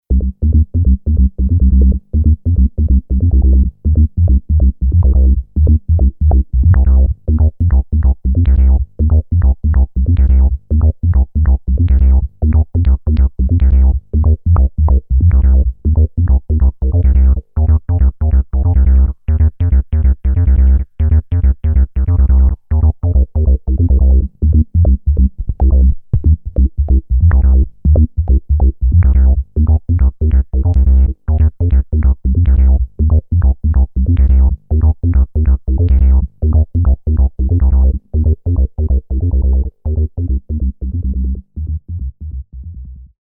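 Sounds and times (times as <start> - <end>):
analog filter velocity synth bass: 0.0 - 43.2.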